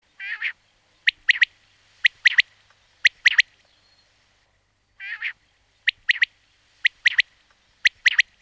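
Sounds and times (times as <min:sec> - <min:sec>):
quail: 0:00.2 - 0:03.5, 0:05.0 - 0:08.4.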